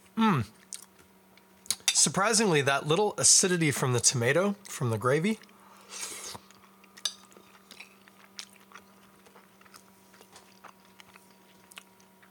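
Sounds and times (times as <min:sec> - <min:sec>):
speech: 0:00.2 - 0:00.6, 0:02.0 - 0:06.0
wet chewing of food with crunchy bites: 0:00.5 - 0:01.9, 0:05.4 - 0:12.2.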